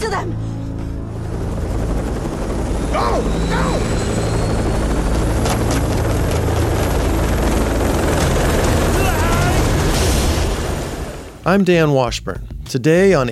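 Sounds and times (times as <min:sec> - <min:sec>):
helicopter with dangling ladder flying overhead by a Kuala Lumpur high-rise: 0:01.0 - 0:11.4
speech: 0:11.5 - 0:13.3.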